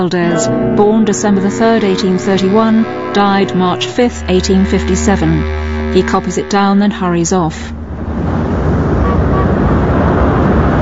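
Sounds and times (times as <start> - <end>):
speech: 0.0 - 8.3
car driving in traffic: 5.2 - 10.8.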